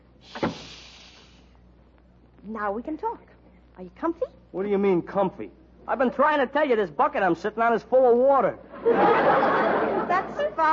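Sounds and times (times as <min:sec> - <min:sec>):
faint steady hum: 0:00.0 - 0:10.7
door closing: 0:00.3 - 0:00.7
speech: 0:02.4 - 0:09.6
laughter: 0:08.7 - 0:10.7.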